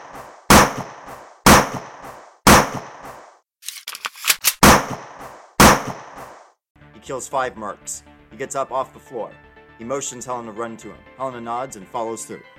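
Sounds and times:
sharp pistol gunshots: 0.5s - 0.9s, 1.5s - 3.0s, 4.4s - 6.2s
smaller clattering cracks: 3.6s - 4.6s
speech: 7.0s - 12.4s.

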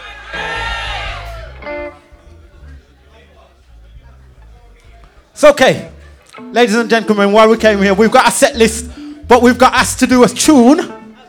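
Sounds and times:
live crowd shouting back in unison to a performer's call: 0.0s - 2.0s
crowd murmuring and scattered voices: 0.0s - 6.4s, 7.6s - 11.2s
speech: 5.4s - 5.9s, 6.5s - 11.0s.

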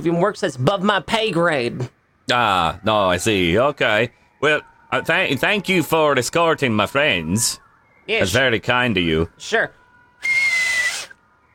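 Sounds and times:
speech: 0.0s - 10.4s
loud breathy whistle blast: 10.2s - 11.5s.

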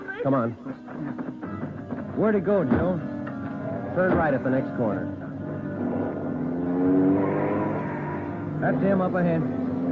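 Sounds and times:
speech: 0.2s - 1.6s, 2.2s - 3.2s, 4.0s - 5.2s, 8.6s - 9.9s
car engine revving and accelerating as a fleeing man drives off: 4.8s - 9.9s.

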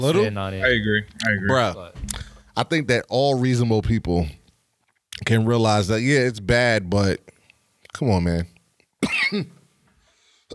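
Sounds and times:
speech: 0.0s - 4.4s, 5.2s - 7.3s, 7.9s - 9.6s
person coughing harshly: 9.0s - 9.6s
raspy throat-clearing rattle: 9.0s - 9.6s.

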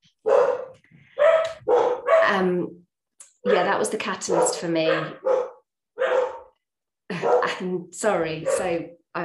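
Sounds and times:
dogs barking indoors: 0.1s - 2.5s, 3.4s - 7.6s, 8.3s - 8.8s
speech: 2.3s - 2.8s, 3.4s - 5.3s, 7.5s - 9.2s.

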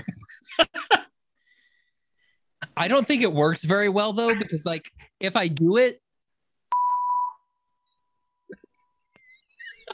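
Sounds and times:
speech: 2.8s - 6.0s
loud steady censor bleep tone: 6.7s - 7.5s.

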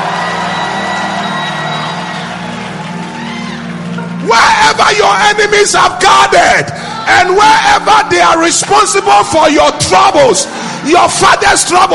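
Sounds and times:
whoops: 0.0s - 4.6s
large crowd screaming and shouting: 0.0s - 11.9s
speech: 4.8s - 11.9s.

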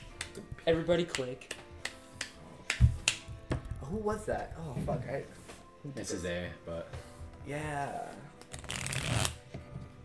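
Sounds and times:
speech: 0.7s - 1.6s, 3.9s - 8.3s
deck of playing cards being shuffled: 8.3s - 9.5s.

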